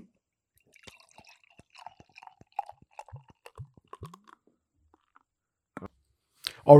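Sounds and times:
beer pouring into a glass with bubbly glugging: 0:00.6 - 0:05.2
beer dripping: 0:00.6 - 0:05.3.

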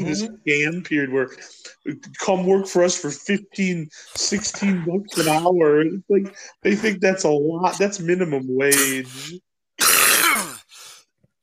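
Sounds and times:
speech: 0:00.0 - 0:09.5
harsh raspy coughing: 0:04.6 - 0:05.6, 0:08.7 - 0:10.8.

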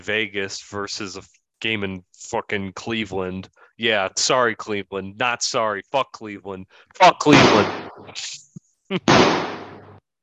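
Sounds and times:
speech: 0:00.0 - 0:09.6
gunshot sound effect: 0:07.2 - 0:08.2, 0:09.0 - 0:10.0.

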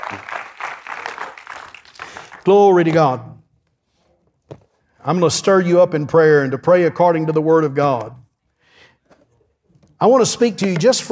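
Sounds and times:
crowd clapping hands in applause: 0:00.0 - 0:02.6
speech: 0:00.1 - 0:00.3, 0:02.4 - 0:03.4, 0:05.0 - 0:08.2, 0:10.0 - 0:11.1.

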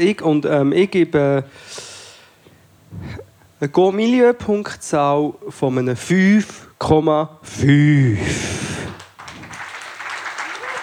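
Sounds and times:
speech: 0:00.0 - 0:01.8, 0:03.0 - 0:08.5
audience applause in Kriens: 0:08.6 - 0:10.8.

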